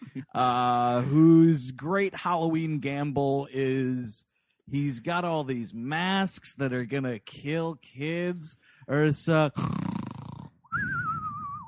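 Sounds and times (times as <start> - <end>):
speech: 0.2 - 9.8
person making a cartoonish fake snore: 9.6 - 10.7.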